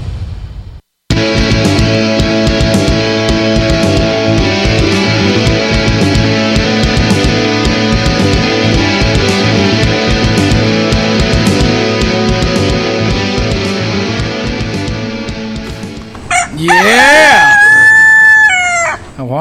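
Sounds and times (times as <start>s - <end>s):
dense steady music: 1.1s - 16.1s
rooster crowing: 16.3s - 19.2s.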